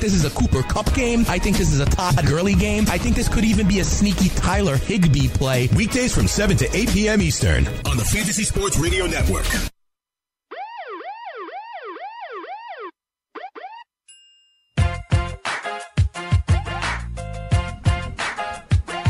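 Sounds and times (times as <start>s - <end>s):
music: 0.0s - 9.7s, 14.8s - 19.0s
speech: 0.0s - 9.7s
emergency vehicle siren yelping: 10.5s - 13.9s.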